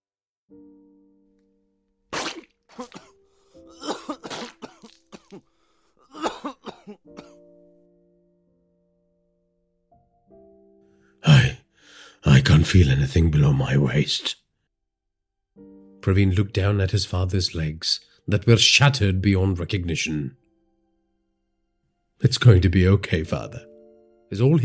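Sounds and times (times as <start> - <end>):
badly injured man coughing up blood: 2.2 - 5.5, 6.1 - 7.4
speech: 2.8 - 4.3, 12.5 - 14.4, 16.0 - 20.4, 22.2 - 23.7, 24.3 - 24.6.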